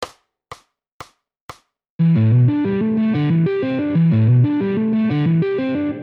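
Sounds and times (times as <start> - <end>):
guitar: 2.0 - 6.0.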